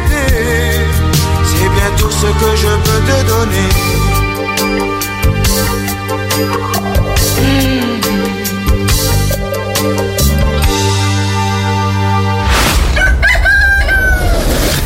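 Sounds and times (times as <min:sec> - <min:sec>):
steady music: 0:00.0 - 0:14.8
rooster crowing: 0:12.9 - 0:14.7.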